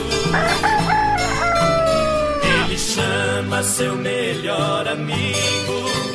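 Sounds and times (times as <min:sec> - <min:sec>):
rooster crowing on its roost: 0:00.2 - 0:02.9
speech: 0:03.6 - 0:06.1.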